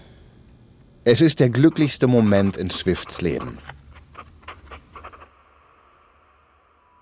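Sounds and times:
low steady hum: 0.0 - 7.0
speech: 1.0 - 3.8
pen scratching across paper signing a contract: 1.5 - 5.3.

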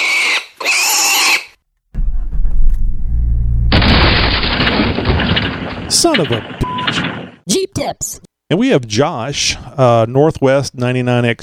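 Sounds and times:
pig squealing: 0.0 - 1.6
deep rumbling engine: 2.0 - 5.2
speech: 6.0 - 11.4.

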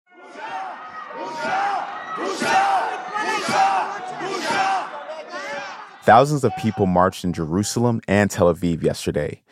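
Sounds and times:
lawmakers chanting in unison in a parliament chamber: 0.1 - 6.7
shouting and crowd noise in a parliament chamber: 0.1 - 7.8
speech: 6.1 - 9.5.

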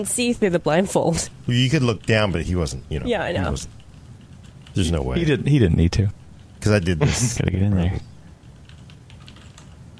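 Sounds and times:
speech: 0.0 - 3.8, 4.8 - 8.1
typing on mechanical keyboard with brown switches: 3.6 - 5.0, 8.4 - 9.9.

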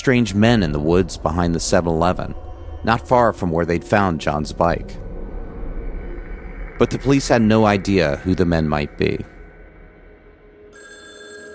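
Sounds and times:
speech: 0.0 - 5.0, 6.8 - 9.3
telephone bell ringing: 10.7 - 11.5.

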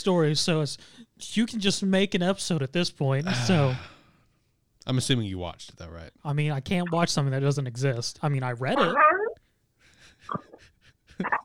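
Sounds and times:
speech: 0.0 - 3.9, 4.8 - 9.2, 10.2 - 10.5, 11.2 - 11.4
dog snorting: 8.7 - 9.4, 11.2 - 11.4.

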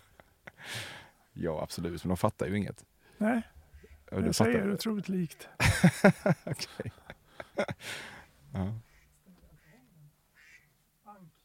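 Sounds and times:
speech: 1.4 - 7.0, 7.6 - 8.9
laughter: 5.6 - 8.8
duck quacking in loud raspy calls: 8.8 - 10.7.

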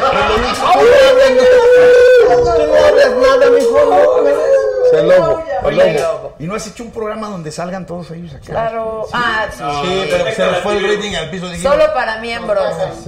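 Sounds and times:
laughter: 0.0 - 3.2
wolf howling: 0.8 - 5.5
speech: 6.5 - 13.0.

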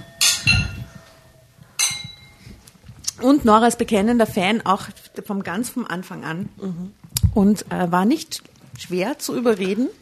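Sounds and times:
glasses clinking together in a toast: 0.0 - 2.4
speech: 3.2 - 10.0.

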